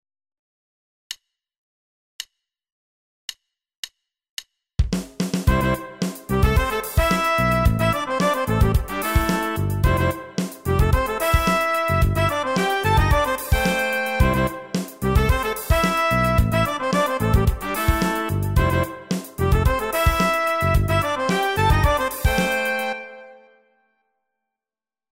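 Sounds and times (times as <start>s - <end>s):
pop horn section: 5.5s - 23.6s.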